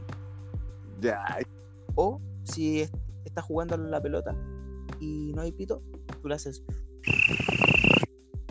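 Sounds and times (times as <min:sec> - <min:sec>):
speech: 0:01.0 - 0:07.6
person imitating cricket chirps: 0:07.1 - 0:08.0.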